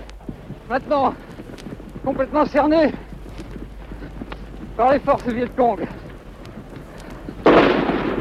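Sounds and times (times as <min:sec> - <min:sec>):
speech: 0:00.7 - 0:01.4, 0:02.0 - 0:03.1, 0:04.8 - 0:06.0
machine gun fire aimed at a presidential palace: 0:07.4 - 0:08.2.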